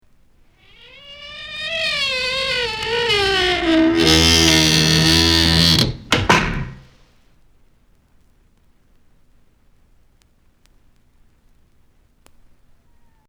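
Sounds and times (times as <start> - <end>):
squeaky door: 0.7 - 6.9.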